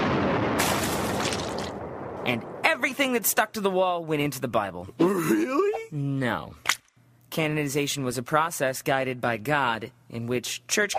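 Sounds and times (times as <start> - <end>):
loud booming cannon blast with rushing roar: 0.0 - 3.1
speech: 2.3 - 6.7, 7.3 - 10.9.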